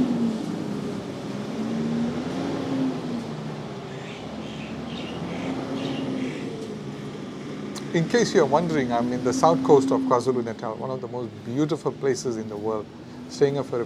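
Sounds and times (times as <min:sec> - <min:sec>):
truck passing outdoors on the south coast of KwaZulu-Natal: 0:00.0 - 0:13.8
faint birdsong: 0:03.4 - 0:08.0
speech: 0:07.9 - 0:13.8.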